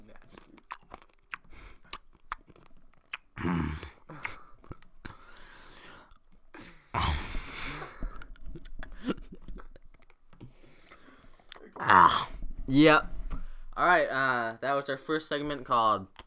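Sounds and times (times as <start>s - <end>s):
Tic Tac mints chewed close to the microphone: 0.0s - 11.8s
speech: 12.7s - 13.1s, 13.8s - 16.1s.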